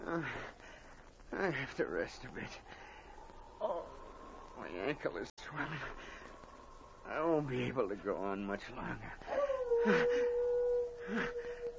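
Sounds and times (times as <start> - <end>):
speech: 0.1 - 0.5, 1.3 - 2.8, 4.6 - 6.2, 7.1 - 10.2, 11.1 - 11.5
faint wolves howling in a wild setting: 2.5 - 11.7
steady low tone: 2.5 - 11.7.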